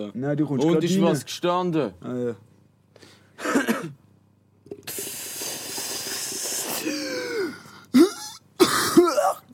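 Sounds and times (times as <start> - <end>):
speech: 0.0 - 4.0
person coughing into the microphone: 3.4 - 4.0, 6.7 - 9.5
loud hissing rush of breath: 4.8 - 8.0.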